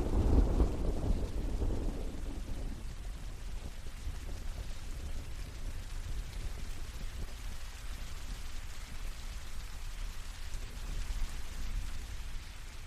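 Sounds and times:
deep rumble of thunder: 0.0 - 5.9
steady rain falling on an island: 0.0 - 12.8.

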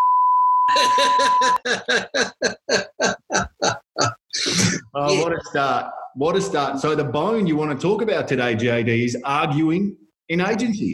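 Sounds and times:
steady high-pitched censor bleep: 0.0 - 1.6
speech: 0.7 - 10.9.

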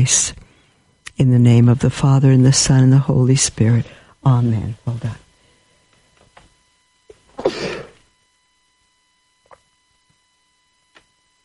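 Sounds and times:
speech: 0.0 - 0.4, 1.2 - 5.2
person sneezing: 7.3 - 8.0.

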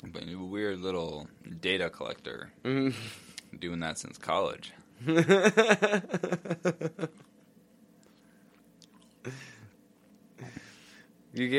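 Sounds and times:
speech: 0.1 - 7.3, 9.2 - 9.6, 11.4 - 11.5
laughter: 5.0 - 7.2
munching French toast: 7.0 - 10.4
wet chewing bites: 7.1 - 10.4.

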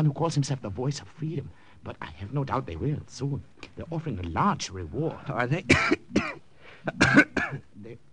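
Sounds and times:
speech: 0.0 - 8.1
man with a very bad cold coughing harshly: 5.7 - 7.7.

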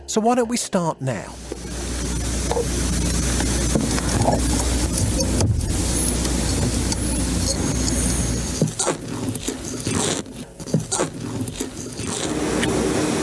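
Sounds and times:
speech: 0.1 - 1.8, 4.2 - 4.8
steady low rumble: 1.4 - 9.4
sea turtles in captivity chirping: 1.4 - 12.3
scratchy clicks and scrapes: 2.4 - 12.8.

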